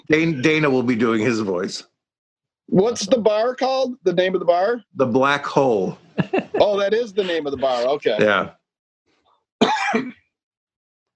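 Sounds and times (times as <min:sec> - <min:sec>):
speech: 0:00.1 - 0:01.9, 0:02.7 - 0:08.6, 0:09.6 - 0:10.2
laughter: 0:05.7 - 0:08.5
harsh throaty cough: 0:07.2 - 0:07.9, 0:09.6 - 0:10.2.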